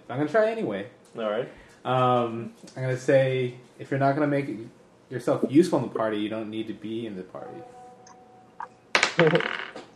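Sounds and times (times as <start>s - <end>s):
speech: 0.1s - 7.8s, 9.2s - 9.6s
dice clattering across a table during a tabletop role-playing game: 9.0s - 9.9s.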